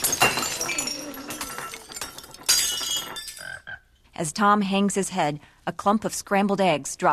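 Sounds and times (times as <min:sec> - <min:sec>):
glassware shattering as a pole smashes through a row of it: 0:00.0 - 0:03.6
speech: 0:04.2 - 0:07.1.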